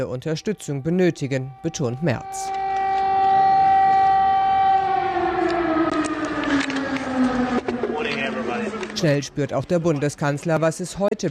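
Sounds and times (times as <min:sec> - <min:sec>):
speech: 0:00.0 - 0:02.6, 0:09.0 - 0:11.2
air raid siren wailing: 0:00.0 - 0:09.4
rumble and clatter: 0:04.7 - 0:11.2.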